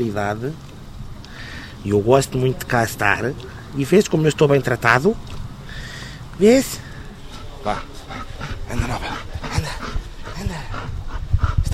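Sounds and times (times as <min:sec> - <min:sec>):
speech: 0:00.0 - 0:00.7, 0:01.8 - 0:05.3, 0:06.4 - 0:06.8, 0:07.6 - 0:09.2
excited 12-year-old dog panting: 0:07.3 - 0:11.7.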